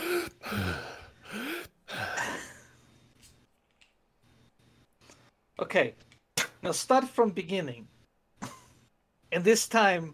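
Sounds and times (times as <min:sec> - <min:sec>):
person breathing audibly in loud gasping bursts: 0:00.0 - 0:02.8
speech: 0:05.6 - 0:08.5, 0:09.3 - 0:10.1.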